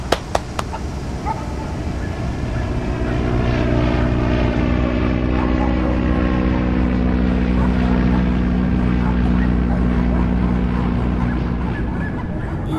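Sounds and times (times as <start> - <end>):
sharp clicks: 0.0 - 0.8
airplane flying by with propeller drone: 2.1 - 12.6.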